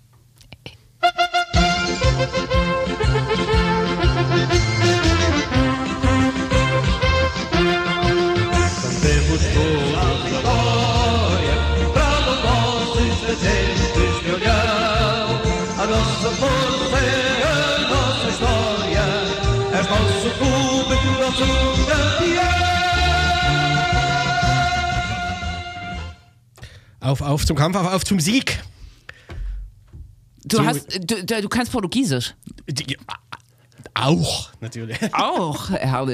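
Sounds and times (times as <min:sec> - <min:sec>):
song with full instrumentation playing: 0:01.0 - 0:26.3
speech: 0:27.1 - 0:28.6, 0:30.6 - 0:33.2, 0:34.0 - 0:36.1
laughter: 0:34.8 - 0:35.8.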